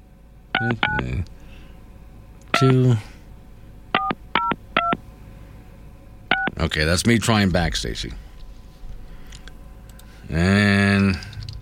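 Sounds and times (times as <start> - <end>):
telephone keypad tones dialing a number: 0.6 - 1.0, 4.0 - 5.0
speech: 0.6 - 1.4, 2.6 - 3.1, 6.6 - 8.2, 10.3 - 11.2.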